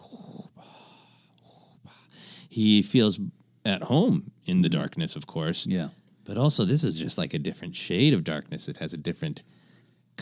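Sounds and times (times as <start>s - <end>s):
voice imitating heavy mechanical respirator breathing: 0.0s - 2.6s
speech: 2.6s - 9.6s.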